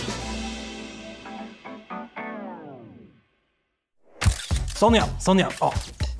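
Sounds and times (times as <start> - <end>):
sharp camera shutter clicks: 4.1 - 4.9
speech: 4.8 - 6.1.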